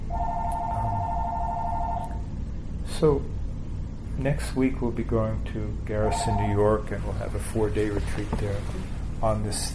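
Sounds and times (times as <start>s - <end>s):
telephone ringing in a steady electronic trill: 0.1s - 2.2s, 6.0s - 6.6s
speech: 3.0s - 3.4s, 4.2s - 9.7s.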